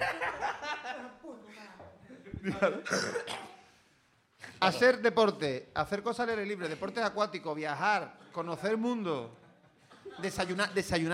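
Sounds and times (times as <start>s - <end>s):
laughter: 0.0s - 1.4s, 2.1s - 2.9s, 8.0s - 11.1s
person coughing: 2.3s - 3.7s
speech: 2.4s - 3.4s, 4.6s - 9.4s, 10.0s - 11.1s.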